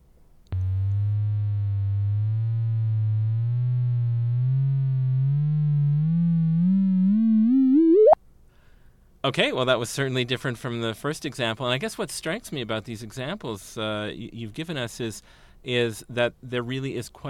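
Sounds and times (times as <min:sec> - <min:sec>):
sonified gravitational-wave signal from two rotating black holes colliding: 0:00.6 - 0:08.2
speech: 0:09.2 - 0:17.2.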